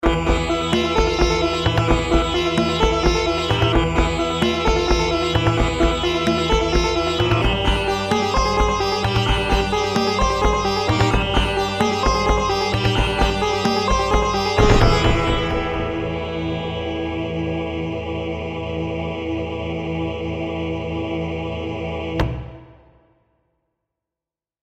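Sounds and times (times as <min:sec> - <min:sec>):
tabla percussion: 0:00.0 - 0:16.8
virtual sitar: 0:00.0 - 0:17.9
choir: 0:00.1 - 0:23.0.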